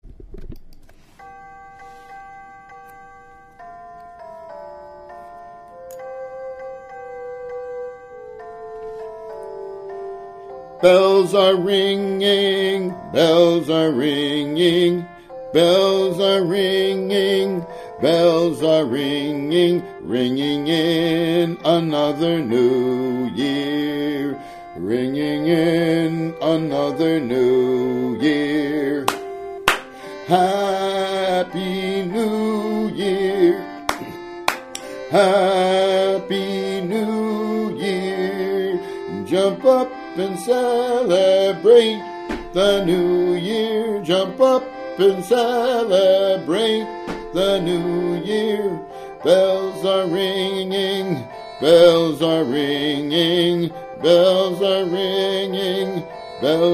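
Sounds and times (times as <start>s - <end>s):
person singing: 10.5s - 56.7s.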